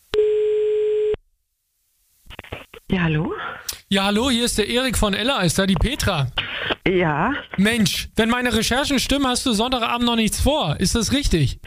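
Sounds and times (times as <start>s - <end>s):
telephone ringback tone while placing a call: 0.2s - 1.2s
speech: 2.9s - 11.6s.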